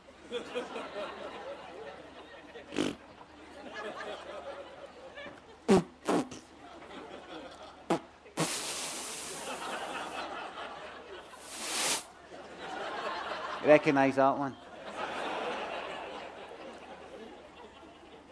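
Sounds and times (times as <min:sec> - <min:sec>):
laughter: 0:00.2 - 0:05.7, 0:06.6 - 0:08.4, 0:09.1 - 0:18.3
man farting in a toilet: 0:02.7 - 0:03.0, 0:05.7 - 0:06.5, 0:07.9 - 0:09.4, 0:11.5 - 0:12.0
speech: 0:13.7 - 0:14.6.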